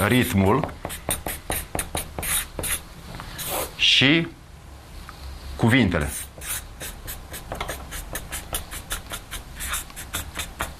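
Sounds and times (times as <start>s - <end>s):
speech: 0.0s - 1.1s, 3.8s - 4.4s, 5.6s - 6.2s
pen or pencil writing on paper: 0.0s - 2.8s, 6.1s - 10.7s.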